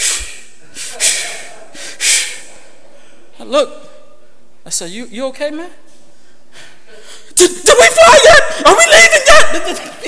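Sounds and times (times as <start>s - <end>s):
person imitating heavy panicked breathing of a scared plane passenger: 0.0s - 3.3s, 6.3s - 7.4s
speech: 3.5s - 3.9s, 4.7s - 5.8s, 7.4s - 10.0s.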